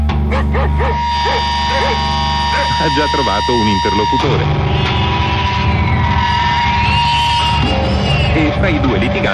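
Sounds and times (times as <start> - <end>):
loud steady low hum: 0.0 - 9.3
dog barking with short yelping barks: 0.3 - 2.8
speech: 0.5 - 4.9, 8.4 - 9.3.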